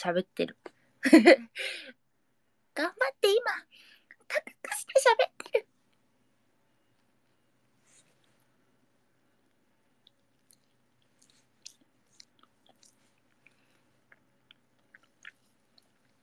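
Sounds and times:
speech: 0.0 - 2.0, 2.8 - 5.7
low steady hiss: 0.0 - 16.2
person chewing a banana: 9.4 - 16.2.

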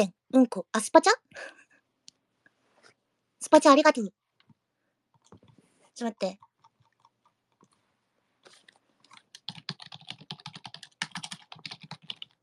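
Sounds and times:
speech: 0.0 - 1.6, 3.4 - 4.2, 6.0 - 6.4
computer keyboard typing: 5.1 - 5.6, 6.2 - 7.8, 8.4 - 12.4.

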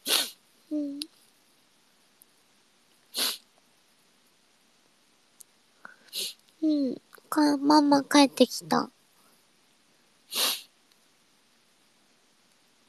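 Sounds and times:
person sneezing: 0.0 - 0.4, 3.1 - 3.4, 6.1 - 6.4, 10.3 - 10.7
short nasal voiced noises: 0.0 - 1.1, 6.1 - 8.9
speech: 7.4 - 9.0.

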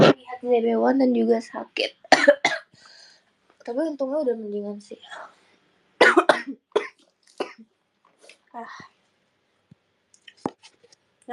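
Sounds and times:
ill person coughing: 0.0 - 0.2, 6.0 - 7.7
speech: 0.4 - 2.4, 3.7 - 5.4, 8.5 - 8.9.

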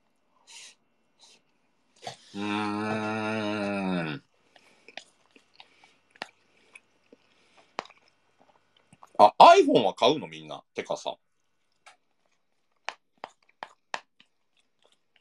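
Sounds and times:
speech: 2.3 - 3.3, 9.7 - 11.3
sustained vocal tone: 2.3 - 4.2
chewing and eating hamburger steak: 4.4 - 9.2, 11.4 - 15.2.

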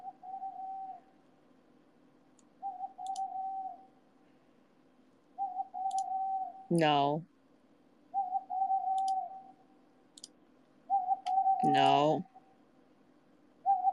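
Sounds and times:
owl hooting: 0.0 - 1.2, 2.6 - 4.0, 5.4 - 6.7, 8.1 - 9.7, 10.9 - 12.6, 13.6 - 13.9
faint high clicks: 2.4 - 3.3, 8.9 - 9.2
speech: 6.7 - 7.3, 11.8 - 12.3.

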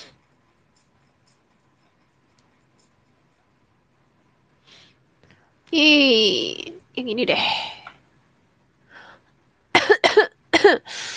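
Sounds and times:
speech: 5.7 - 7.8, 10.7 - 11.1
person coughing harshly: 9.8 - 10.9.

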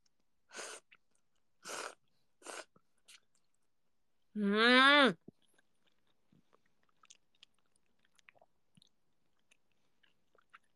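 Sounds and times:
slurping soba noodles: 1.6 - 2.8.

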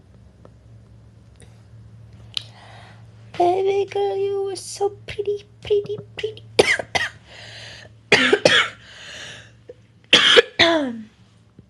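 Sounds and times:
steady low hum: 0.0 - 10.2
raspy breaths: 2.5 - 3.1, 7.2 - 8.0, 8.8 - 9.6
speech: 3.8 - 6.5, 10.6 - 11.1
harsh coughing fit: 6.6 - 7.2, 8.1 - 9.5, 10.1 - 10.7.

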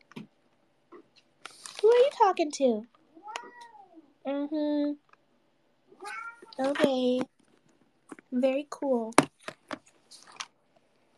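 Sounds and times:
person's voice: 1.6 - 2.9, 6.5 - 7.3, 8.1 - 9.2
speech: 2.2 - 3.0, 4.2 - 5.1, 6.0 - 7.3, 8.3 - 9.3
cat meowing: 3.1 - 4.1, 6.0 - 6.6.

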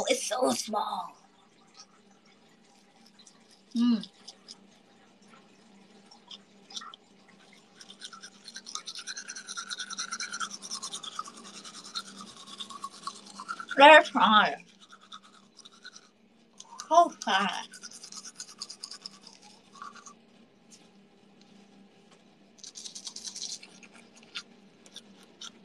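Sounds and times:
toothbrush bristles scrubbing: 0.0 - 1.0, 1.6 - 21.0, 22.6 - 25.6
speech: 0.0 - 1.2, 3.7 - 4.2, 13.8 - 14.6, 16.9 - 17.8.

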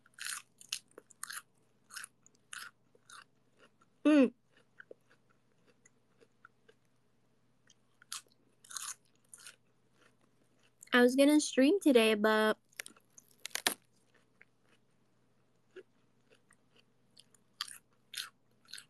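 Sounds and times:
biting and chewing a cold crispy head of lettuce: 0.0 - 7.0, 7.6 - 10.9, 12.6 - 18.8
speech: 4.1 - 4.4, 11.0 - 12.6.

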